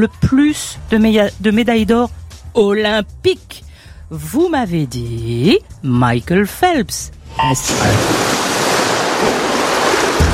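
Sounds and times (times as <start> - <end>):
speech: 0.0 - 8.2
rushing water: 7.2 - 10.3.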